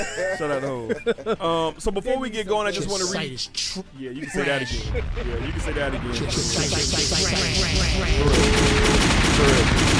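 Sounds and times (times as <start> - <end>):
laughter: 0.0 - 1.6, 4.2 - 5.7
speech: 0.0 - 9.9
rapid gunshot sound effects: 5.4 - 9.9.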